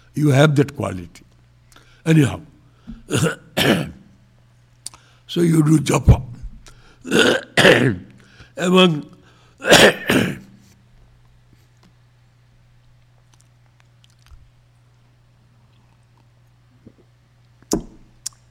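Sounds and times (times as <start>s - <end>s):
low steady hum: 0.0s - 18.4s
speech: 0.2s - 1.2s, 2.0s - 4.0s, 5.3s - 6.3s, 7.0s - 8.0s, 8.6s - 10.3s
person coughing: 3.0s - 4.1s, 7.0s - 8.1s, 9.6s - 10.5s.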